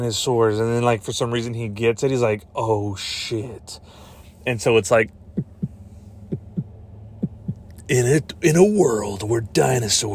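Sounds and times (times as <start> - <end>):
speech: 0.0 - 5.5, 7.9 - 10.1
steady low hum: 1.0 - 10.1
heartbeat sound effect with low lub-dub thumps: 5.3 - 7.7.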